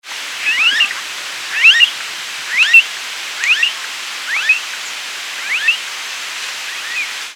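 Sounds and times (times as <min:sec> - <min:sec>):
Crotophaga ani: 0:00.4 - 0:01.0, 0:01.6 - 0:01.9, 0:02.5 - 0:02.8, 0:03.4 - 0:05.8.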